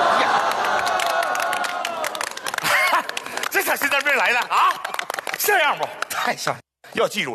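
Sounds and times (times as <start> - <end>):
live audience cheering: 0.0 - 5.9
live audience clapping: 0.0 - 6.6
speech: 5.5 - 7.3.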